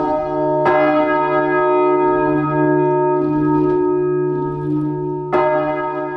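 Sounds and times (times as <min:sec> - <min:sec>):
tonnes-heavy large church bell ringing in a tower: 0:00.0 - 0:06.1.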